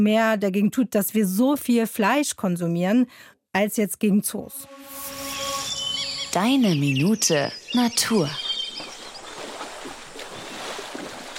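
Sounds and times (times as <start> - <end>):
speech: 0.0 - 5.2, 6.3 - 8.4
elephants bathing and splashing in a river: 8.4 - 11.3.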